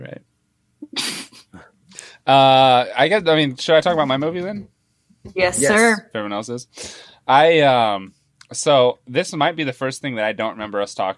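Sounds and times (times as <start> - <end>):
person sneezing: 0.8 - 1.7
speech: 2.3 - 11.1
quick sharp inhale before a sneeze: 6.8 - 7.2.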